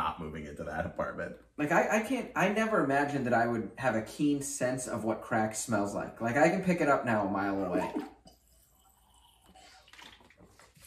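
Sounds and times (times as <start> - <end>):
speech: 0.7 - 8.1
person sipping water with soft slurping: 7.8 - 10.8.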